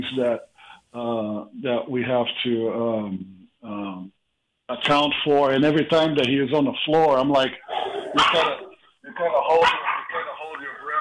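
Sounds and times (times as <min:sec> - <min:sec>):
speech: 0:00.0 - 0:09.9
attack dogs barking and yipping: 0:07.6 - 0:08.8, 0:09.4 - 0:10.7.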